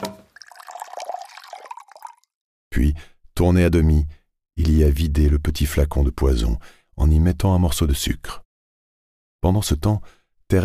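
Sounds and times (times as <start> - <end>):
water poured from a carafe into a glass: 0.1 - 2.3
speech: 2.8 - 8.4, 9.4 - 10.6.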